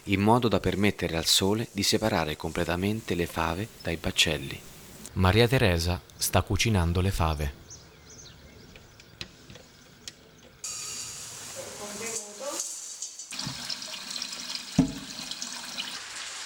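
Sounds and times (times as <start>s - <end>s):
speech: 0.1s - 7.6s
cold tap water pouring into a pot to soak fava beans: 10.6s - 16.4s.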